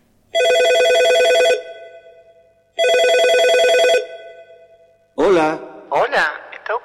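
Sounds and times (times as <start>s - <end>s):
mobile phone ringing with rapid trilling tones: 0.3s - 5.0s
speech: 5.4s - 6.8s.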